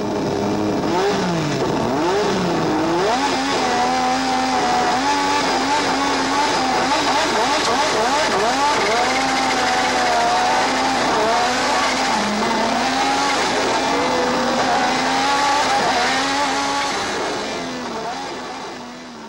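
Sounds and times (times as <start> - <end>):
1980s racing car engines screaming through gear changes: 0.8 - 19.2
racing car tires squealing and skidding: 6.4 - 17.2.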